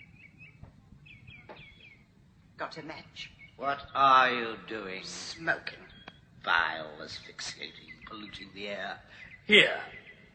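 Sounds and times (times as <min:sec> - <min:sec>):
faint birdsong through an open window: 0:00.0 - 0:10.3
dull knocks: 0:01.4 - 0:01.8
speech: 0:02.6 - 0:05.8, 0:06.4 - 0:10.0.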